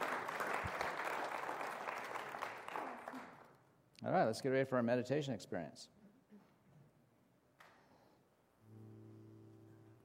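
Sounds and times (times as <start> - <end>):
crowd applauding board members: 0.0 - 3.5
speech: 4.0 - 6.0.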